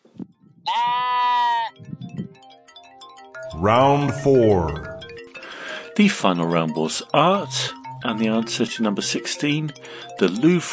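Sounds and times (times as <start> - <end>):
sheep bleating: 0.6 - 1.8
speech: 3.5 - 4.9, 6.0 - 10.7.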